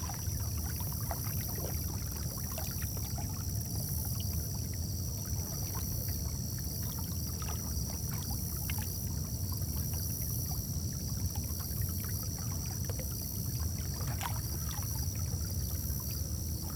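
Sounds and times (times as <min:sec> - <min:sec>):
low rumble of lake water at night: 0:00.0 - 0:16.7.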